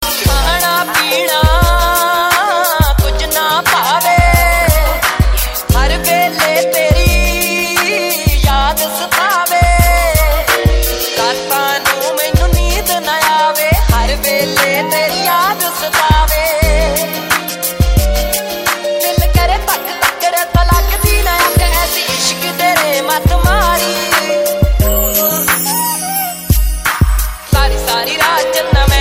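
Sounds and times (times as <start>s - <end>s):
Punjabi remix mobile ringtone: 0.0s - 28.5s.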